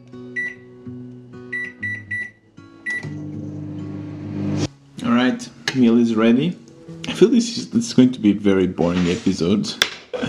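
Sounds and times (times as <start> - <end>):
microwave oven keypad beeps: 0.4 - 0.6, 1.5 - 3.1
microwave oven humming while heating a meal: 1.6 - 4.7
speech: 5.8 - 6.6, 7.2 - 10.2.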